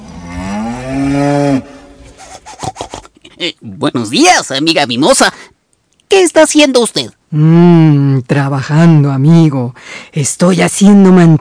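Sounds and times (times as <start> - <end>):
cow mooing in its corral: 0.0 - 2.1
speech: 0.9 - 1.7, 3.4 - 5.5, 6.1 - 11.3
quick rhythmic scraping or rubbing strokes: 1.9 - 3.1.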